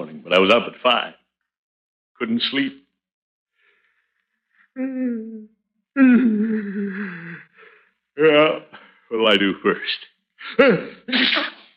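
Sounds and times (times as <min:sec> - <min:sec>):
speech: 0:00.3 - 0:01.2, 0:02.2 - 0:02.8, 0:04.8 - 0:07.4, 0:08.2 - 0:11.6
person with a cold sneezing: 0:11.1 - 0:11.7.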